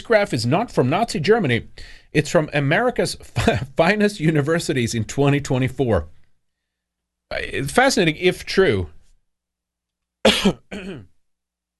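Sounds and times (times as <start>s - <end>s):
speech: 0.0s - 6.2s, 7.3s - 9.0s, 10.2s - 11.1s
person coughing: 10.3s - 11.2s.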